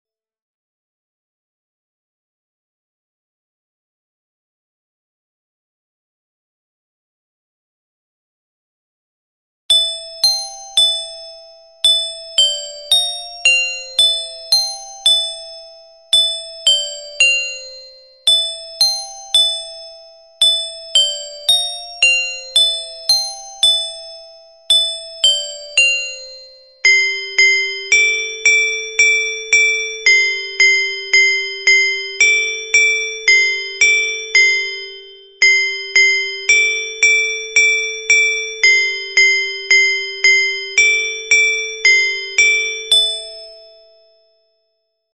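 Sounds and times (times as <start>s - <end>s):
alto metallophone playing a muineira: 9.7s - 43.7s.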